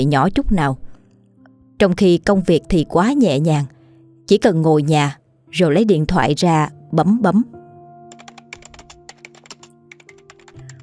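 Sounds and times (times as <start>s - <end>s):
speech: 0.0s - 0.8s, 1.8s - 7.6s
typing on a computer keyboard: 8.1s - 10.8s.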